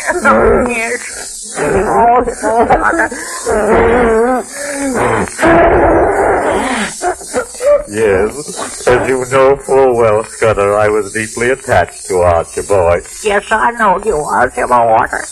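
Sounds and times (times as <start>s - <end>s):
theatrical choking sobs and wavering wails: 0.0s - 10.2s
laughter: 0.0s - 13.0s
speech: 0.1s - 15.2s.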